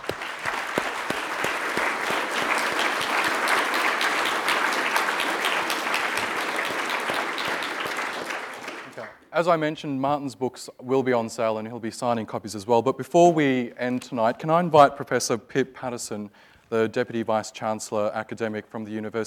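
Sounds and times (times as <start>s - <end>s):
audience applause: 0.0s - 9.2s
speech: 9.4s - 19.2s.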